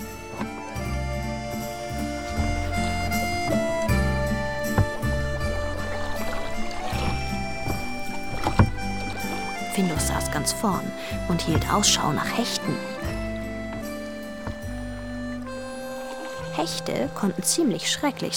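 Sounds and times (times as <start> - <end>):
creaking: 0.0 - 17.4
boat being rowed on a lake: 0.0 - 18.3
speech: 9.8 - 13.0, 16.7 - 18.3.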